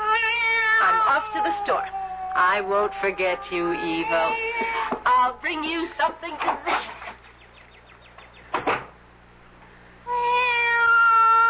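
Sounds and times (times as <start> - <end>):
cat meowing: 0.0 - 5.0, 10.1 - 11.4
speech: 1.1 - 6.9.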